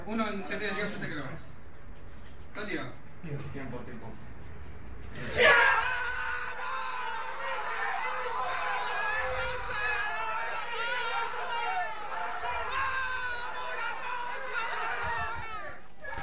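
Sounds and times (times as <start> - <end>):
speech: 0.1 - 1.5, 2.6 - 4.3
small group screaming and yelling in celebration: 5.1 - 16.2
people chattering: 5.2 - 16.2.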